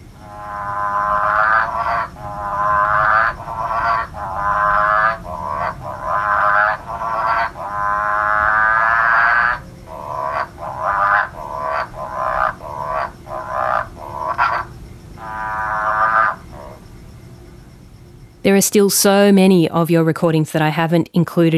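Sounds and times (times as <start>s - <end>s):
chorus of frogs croaking in a backyard pool in Perth: 0.0s - 21.5s
speech: 18.5s - 21.5s.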